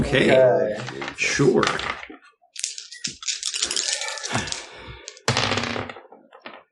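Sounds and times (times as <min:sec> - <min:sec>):
speech: 0:00.0 - 0:02.0
dice clattering across a hard tabletop in a tabletop game: 0:02.6 - 0:06.6.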